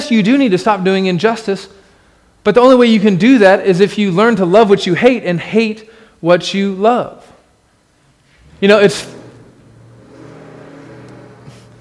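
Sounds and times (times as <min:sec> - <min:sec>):
speech: 0:00.1 - 0:01.8, 0:02.4 - 0:07.3, 0:08.6 - 0:09.2
truck engine revving as it passes by: 0:08.4 - 0:11.7.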